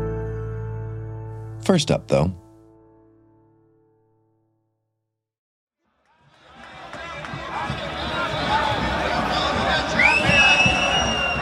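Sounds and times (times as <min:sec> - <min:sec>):
speech: 0:01.7 - 0:02.4
crowd of many voices in Vienna Austria: 0:06.1 - 0:11.4
whistle-like tone: 0:09.9 - 0:11.4.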